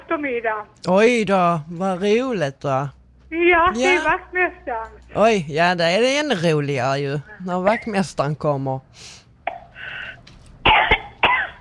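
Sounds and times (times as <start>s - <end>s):
speech: 0.1s - 9.2s
breathy inhale: 8.9s - 10.2s
harsh coughing: 10.6s - 11.5s.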